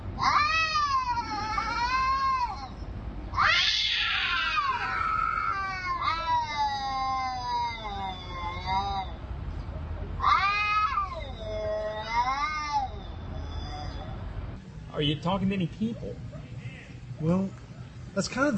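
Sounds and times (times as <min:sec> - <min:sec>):
cat yowling and caterwauling: 0:00.2 - 0:09.2, 0:10.2 - 0:14.3
speech: 0:15.0 - 0:16.4, 0:17.2 - 0:17.6, 0:18.2 - 0:18.5.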